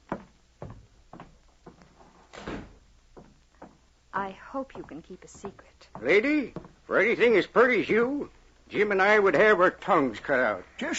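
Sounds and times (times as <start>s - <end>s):
door being shut: 2.3s - 2.8s
speech: 4.2s - 10.9s.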